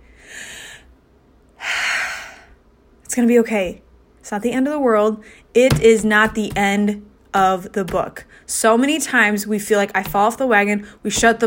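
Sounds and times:
deep audible breaths: 0.0 - 1.0, 1.6 - 2.6
speech: 3.2 - 11.4.

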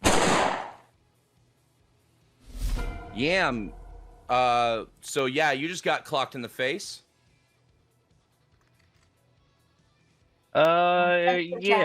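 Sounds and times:
submachine gun firing on full auto: 0.0 - 0.8
speech: 3.2 - 7.0, 10.6 - 11.8.

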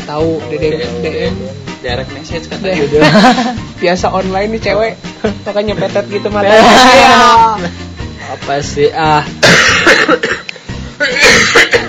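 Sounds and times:
speech: 0.1 - 10.4
laughter: 2.7 - 3.7
person coughing harshly: 9.4 - 11.8.

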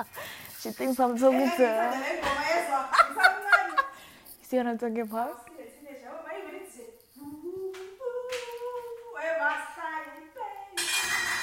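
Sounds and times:
speech: 0.0 - 3.5, 4.5 - 5.5
laughter: 2.7 - 4.0
pots and dishes clattering: 10.8 - 11.4.

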